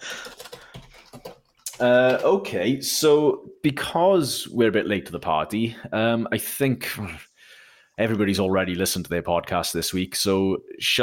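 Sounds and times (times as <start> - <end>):
computer keyboard keys clicking: 0.1 - 2.3
speech: 1.8 - 7.3, 8.0 - 11.0.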